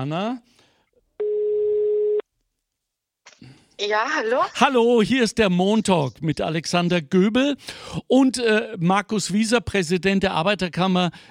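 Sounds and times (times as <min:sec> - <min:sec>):
speech: 0:00.0 - 0:00.6, 0:03.8 - 0:11.2
telephone ringback tone while calling: 0:01.2 - 0:02.2.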